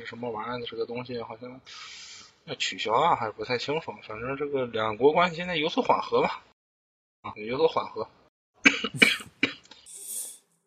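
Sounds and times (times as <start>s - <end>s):
speech: 0.1s - 6.5s, 7.2s - 8.2s
breathy exhale or wheeze: 1.7s - 2.4s
person coughing: 8.7s - 10.3s.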